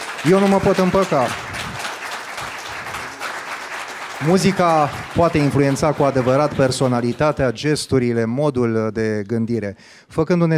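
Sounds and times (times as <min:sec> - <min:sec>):
audience applause for a children's choir performance: 0:00.0 - 0:07.6
speech: 0:00.2 - 0:01.5, 0:04.2 - 0:10.5.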